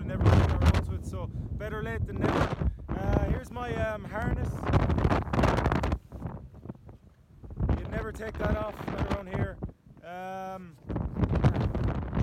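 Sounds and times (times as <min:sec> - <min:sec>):
loud gusting wind roaring across the microphone at sea: 0:00.0 - 0:10.0, 0:10.7 - 0:12.2
speech: 0:01.2 - 0:02.7, 0:03.4 - 0:05.2, 0:08.1 - 0:11.4.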